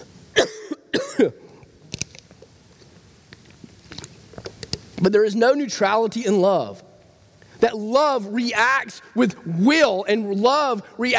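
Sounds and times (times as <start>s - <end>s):
person coughing: 0.4s - 1.4s
speech: 1.2s - 1.4s, 5.0s - 6.8s, 7.6s - 11.1s.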